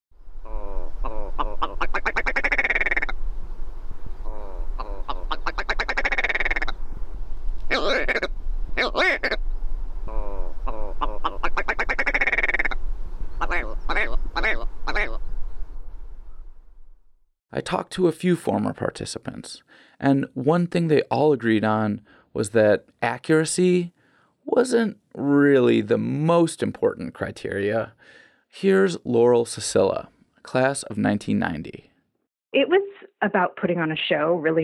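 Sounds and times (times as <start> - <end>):
willow ptarmigan calling with rattling throaty croaks: 0.4 - 3.2, 4.2 - 6.8, 7.7 - 9.4, 10.1 - 12.8, 13.4 - 15.2
speech: 18.0 - 24.0, 24.6 - 31.9, 32.5 - 34.6.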